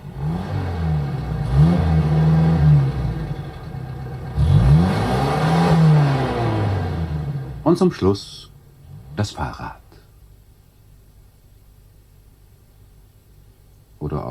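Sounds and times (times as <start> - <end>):
car engine revving as a radio play sound effect: 0.0 - 7.8, 8.8 - 9.6
speech: 7.7 - 8.5, 9.2 - 9.8.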